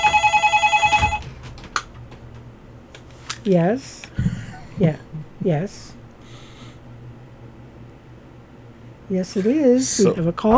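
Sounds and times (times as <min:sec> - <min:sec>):
telephone ringing with a trilling warble: 0:00.0 - 0:01.3
speech: 0:03.4 - 0:05.9, 0:09.1 - 0:10.5.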